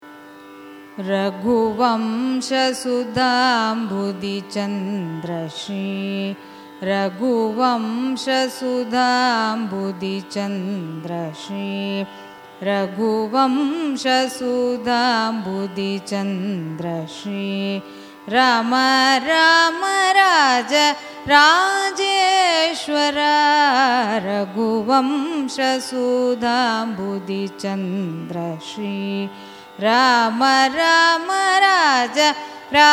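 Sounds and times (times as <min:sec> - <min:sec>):
Carnatic raga music: 0:00.0 - 0:32.9.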